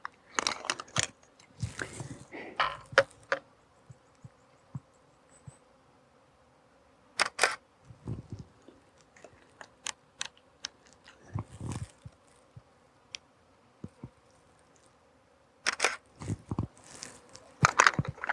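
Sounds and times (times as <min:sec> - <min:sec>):
flying insects buzzing in conifer forests: 0:00.1 - 0:18.3
camera shutter clicks while walking: 0:07.2 - 0:07.6, 0:15.7 - 0:16.0.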